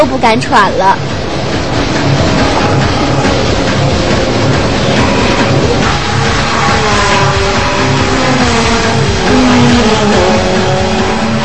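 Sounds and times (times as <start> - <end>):
speech: 0.0 - 2.9
dense mechanical rumble: 0.0 - 11.4
race car engines roaring and revving: 0.0 - 11.4.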